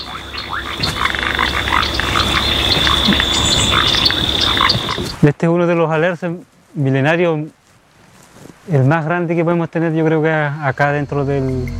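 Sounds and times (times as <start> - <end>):
frogs and toads calling from a wetland: 0.0 - 5.2, 10.3 - 11.7
steady high insect-like drone: 0.0 - 5.2, 10.6 - 11.7
speech: 5.2 - 7.6, 8.7 - 11.7.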